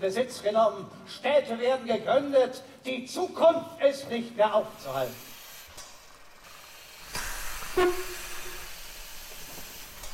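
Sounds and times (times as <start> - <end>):
speech: 0.0 - 5.3, 7.8 - 8.2
steam locomotive idling and hissing on a siding: 4.5 - 10.1.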